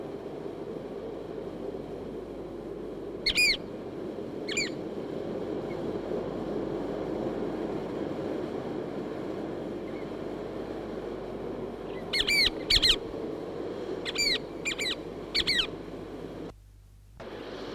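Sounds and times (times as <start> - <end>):
steady rushing noise: 0.0 - 16.5
Chatham Island oystercatcher calling with downslurred whistles in the Chatham Islands: 3.2 - 3.7, 4.4 - 4.8, 11.9 - 13.1, 14.0 - 15.7.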